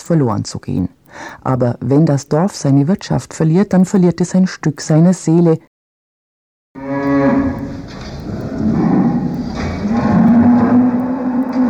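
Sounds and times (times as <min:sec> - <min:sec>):
speech: 0:00.1 - 0:05.7
fattening oxen mooing in a cattle stall on an Allgäu farm: 0:06.8 - 0:11.6.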